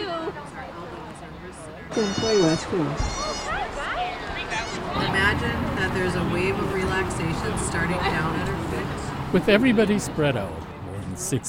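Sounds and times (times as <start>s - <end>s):
murmur of people at a goat yoga class: 0.0s - 11.4s
goats bleating at a goat yoga class: 1.9s - 5.0s
speech: 2.0s - 3.2s, 5.0s - 11.4s.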